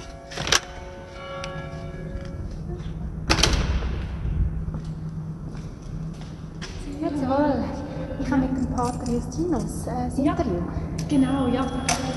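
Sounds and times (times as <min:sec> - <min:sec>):
low rumbling echo in a large space: 0:00.0 - 0:12.1
huge heavy monastery door being opened: 0:03.2 - 0:04.2
speech: 0:07.1 - 0:12.1.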